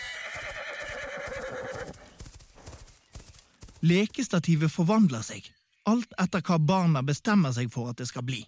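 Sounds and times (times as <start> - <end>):
horse whinnying: 0.0 - 2.1
horse hooves clattering: 0.0 - 5.0
speech: 3.8 - 8.4.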